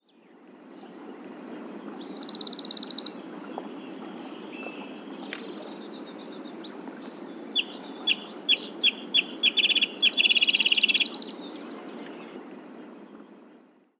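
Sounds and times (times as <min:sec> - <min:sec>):
Northern Parula Setophaga americana singing: 0:02.0 - 0:12.4.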